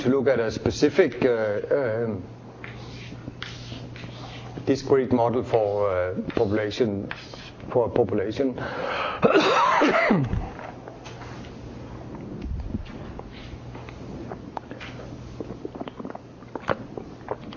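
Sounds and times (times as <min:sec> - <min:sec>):
speech: 0:00.0 - 0:02.4, 0:04.7 - 0:10.4
person coughing: 0:09.2 - 0:10.4
low hum: 0:09.9 - 0:17.5.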